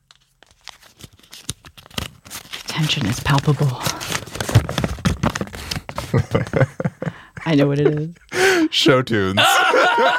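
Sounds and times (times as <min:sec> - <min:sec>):
paper being unfolded: 0:00.0 - 0:06.0
speech: 0:02.8 - 0:04.2, 0:07.5 - 0:10.1
laughter: 0:06.0 - 0:08.7, 0:09.3 - 0:10.1.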